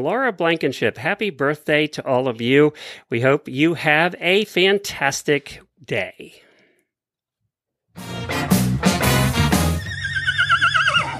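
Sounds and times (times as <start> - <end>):
speech: 0.0 - 6.4, 8.0 - 8.3
horse whinny: 9.6 - 11.1.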